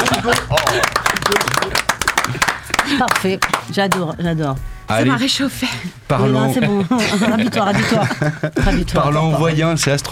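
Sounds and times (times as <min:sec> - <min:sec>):
laughter: 0:00.0 - 0:04.1, 0:06.6 - 0:08.8
person clapping: 0:00.0 - 0:04.2
speech: 0:00.2 - 0:00.5, 0:03.0 - 0:10.1.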